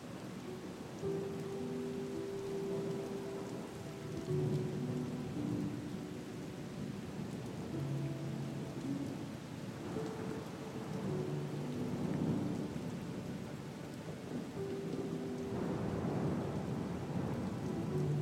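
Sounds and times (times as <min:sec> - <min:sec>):
soft sustained music notes: 0:00.0 - 0:18.2
steady rain: 0:00.0 - 0:18.2
rumbling thunder: 0:15.4 - 0:18.2.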